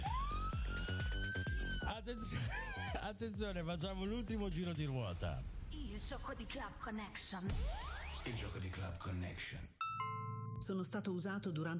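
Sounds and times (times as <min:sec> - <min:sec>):
rising siren sound effect: 0:00.0 - 0:02.8, 0:07.5 - 0:08.6
pounding rhythmic beat: 0:00.0 - 0:04.7
speech: 0:01.9 - 0:09.8, 0:10.7 - 0:11.7.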